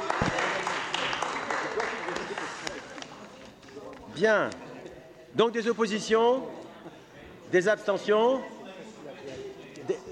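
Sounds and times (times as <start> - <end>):
roomful of people applauding in a meeting hall: 0.0 - 4.1
speech: 4.2 - 4.7, 5.3 - 6.6, 7.5 - 8.6.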